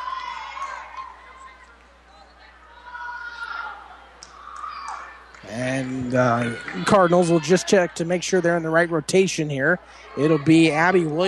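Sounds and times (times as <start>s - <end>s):
crowd murmuring chatter in a gym: 0.0s - 11.2s
crowd applauding in an echoing gym: 4.5s - 8.5s
speech: 5.5s - 11.2s.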